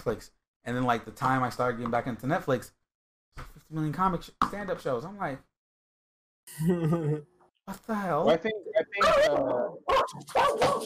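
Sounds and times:
speech: 0.0 - 2.8, 3.4 - 5.5, 6.5 - 10.8
pit bull barking in drawn-out tonal yelps: 9.9 - 10.8.

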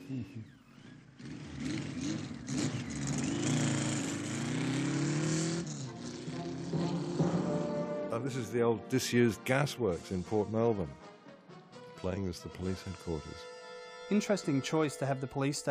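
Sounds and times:
motorcycle engine revving: 0.0 - 8.3
speech: 0.1 - 0.6, 8.2 - 11.1, 12.0 - 13.5, 14.1 - 15.6.

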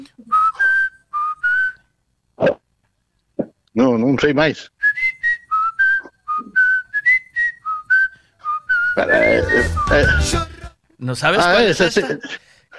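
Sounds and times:
person whistling a song melody: 0.3 - 1.9, 4.8 - 10.6
speech: 3.8 - 4.8, 9.0 - 12.4.

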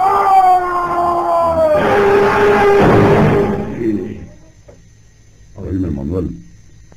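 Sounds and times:
distant drawn-out scream: 0.0 - 4.8.

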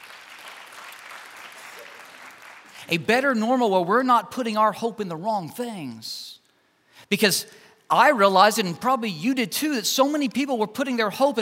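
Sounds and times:
audience applause: 0.0 - 2.8
speech: 2.8 - 6.4, 7.0 - 11.3.

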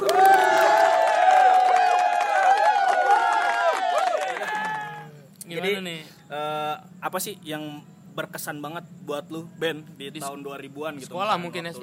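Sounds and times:
clapping: 0.0 - 4.8
crowd cheering and whooping: 0.0 - 5.1
speech: 7.0 - 11.8.

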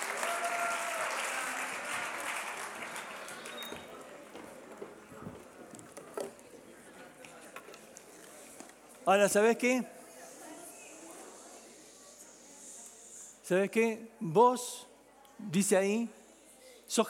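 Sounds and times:
audience applause: 0.0 - 4.6
speech: 9.1 - 10.0, 13.5 - 16.2, 16.9 - 17.0.

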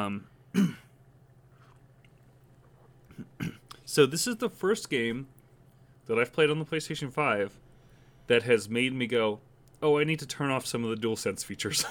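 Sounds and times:
speech: 0.0 - 0.8, 3.9 - 5.4, 6.1 - 7.6, 8.3 - 11.8
throat clearing: 0.5 - 0.9, 3.1 - 3.8.

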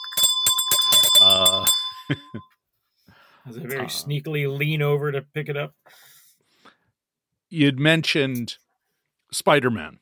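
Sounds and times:
small bell ringing with a bright metallic tone: 0.0 - 2.6
speech: 1.2 - 2.5, 3.4 - 6.1, 7.5 - 8.6, 9.3 - 10.0.

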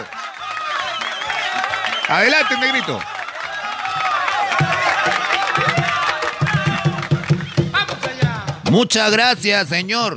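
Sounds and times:
audience clapping: 0.0 - 8.4
crowd voices: 0.0 - 8.6
speech: 2.1 - 3.1, 8.7 - 10.1.

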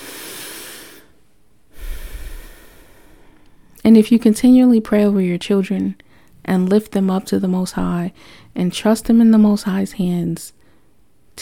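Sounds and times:
slow deep breath: 0.0 - 3.8, 8.2 - 8.5
speech: 3.8 - 10.6.

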